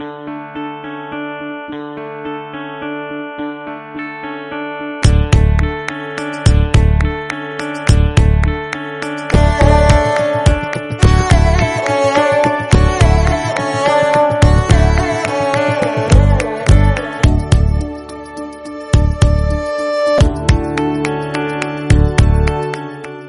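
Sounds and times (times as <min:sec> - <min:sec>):
violin bass: 0:05.0 - 0:05.7, 0:06.5 - 0:07.2, 0:07.9 - 0:08.6, 0:09.3 - 0:20.8, 0:21.9 - 0:22.7.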